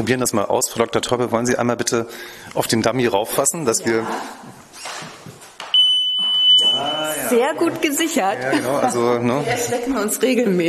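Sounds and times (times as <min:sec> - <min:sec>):
speech: 0:00.0 - 0:05.1, 0:06.8 - 0:10.6
room noise: 0:00.0 - 0:10.6
museum security alarm high-pitched electronic tone: 0:05.7 - 0:07.5.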